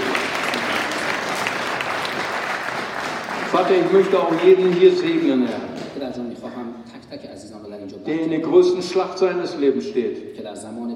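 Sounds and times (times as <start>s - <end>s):
congregation applauding during a church service: 0.0s - 6.3s
speech: 3.5s - 10.9s.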